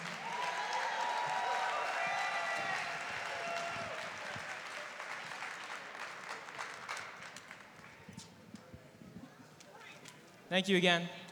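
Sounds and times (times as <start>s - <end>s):
crowd applauding after a performance: 0.0s - 8.1s
speech: 10.5s - 11.2s.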